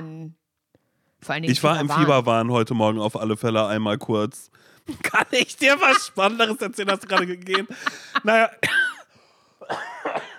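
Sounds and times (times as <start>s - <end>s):
speech: 1.2s - 8.8s
laughter: 4.9s - 8.7s
person coughing harshly: 8.0s - 10.3s.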